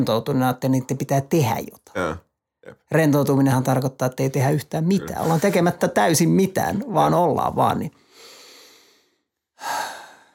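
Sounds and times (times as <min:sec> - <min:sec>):
speech: 0:00.0 - 0:08.0
slow deep breath in during a relaxation breathing exercise: 0:08.0 - 0:10.3.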